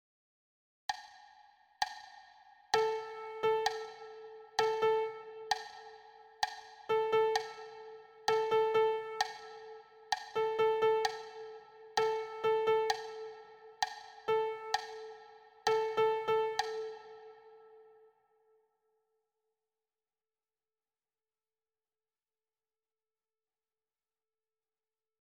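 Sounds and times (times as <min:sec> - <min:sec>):
simple rhythmic cells: 0:00.9 - 0:18.1.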